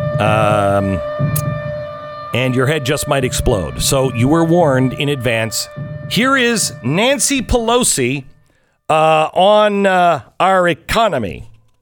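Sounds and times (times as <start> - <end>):
air raid siren droning: 0.0 - 8.7
speech: 0.2 - 1.7, 2.3 - 8.3, 8.9 - 11.5.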